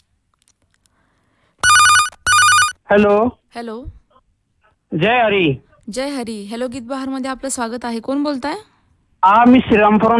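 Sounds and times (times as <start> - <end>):
telephone ringing for an incoming call: 1.6 - 2.8
speech: 2.9 - 4.0, 4.9 - 10.1.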